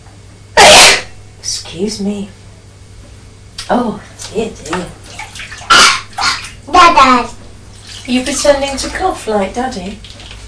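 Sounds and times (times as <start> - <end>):
woman sneezing: 0.6 - 1.2, 5.7 - 6.5
speech: 1.7 - 2.4, 3.7 - 5.0, 6.8 - 7.3, 8.1 - 10.2.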